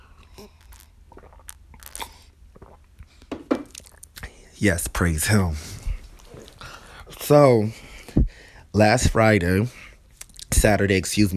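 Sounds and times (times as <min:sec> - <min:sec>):
wet slurping and swallowing of a mixed drink: 0:00.0 - 0:04.3
person sipping rum and soda: 0:00.0 - 0:04.5
mouth clicks: 0:00.3 - 0:03.1
speech: 0:04.6 - 0:05.8, 0:07.3 - 0:07.8, 0:08.8 - 0:09.8, 0:10.6 - 0:11.3.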